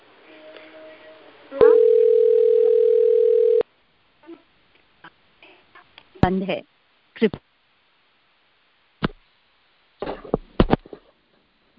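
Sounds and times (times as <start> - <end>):
steady electronic phone line tone: 1.6 - 3.6
speech: 6.3 - 7.5.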